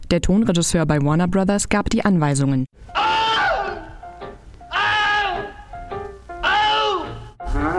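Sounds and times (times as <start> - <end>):
speech: 0.1 - 3.0
man screaming in anguish: 2.9 - 4.1, 4.7 - 5.8, 6.4 - 7.7.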